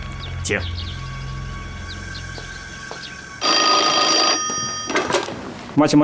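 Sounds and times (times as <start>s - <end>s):
speech: 0.5s - 1.0s, 5.8s - 6.0s
telephone ringing with a bright trill: 3.4s - 5.6s.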